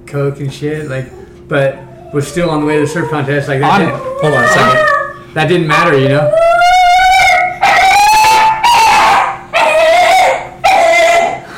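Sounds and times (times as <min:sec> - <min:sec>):
speech: 0:00.1 - 0:06.6
dog howling: 0:00.8 - 0:11.5.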